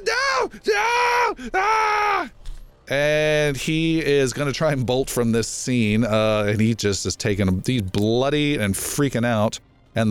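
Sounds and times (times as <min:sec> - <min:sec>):
person imitating a wounded spellcaster screaming: 0:00.0 - 0:02.3
speech: 0:00.5 - 0:10.1.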